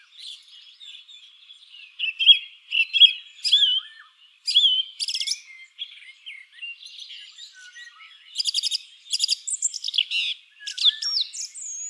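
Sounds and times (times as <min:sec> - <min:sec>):
song thrush singing: 0:00.0 - 0:11.8.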